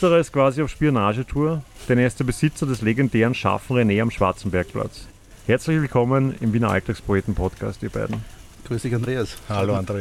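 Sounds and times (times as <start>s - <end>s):
sausages sizzling on a grill at a sausage stand: 0.0s - 9.9s
speech: 0.0s - 9.9s.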